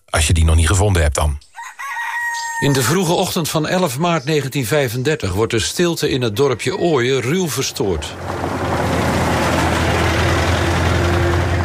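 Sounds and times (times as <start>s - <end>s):
speech: 0.2s - 1.5s, 2.6s - 8.5s
car engine stopping in front of a convent in Ooijen: 7.2s - 11.6s.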